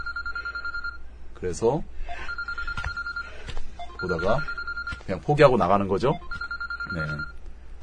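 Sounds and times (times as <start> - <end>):
telephone ringing with an electronic trill: 0.0 - 1.0, 2.3 - 5.0, 6.2 - 7.8
speech: 1.4 - 2.4, 4.0 - 7.4.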